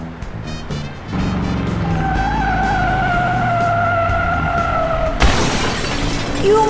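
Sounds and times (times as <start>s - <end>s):
car engine rumbling: 0.0s - 6.6s
car tires squealing in a long loud skid: 1.2s - 5.2s
car crash impact: 5.1s - 6.6s
speech: 6.4s - 6.6s.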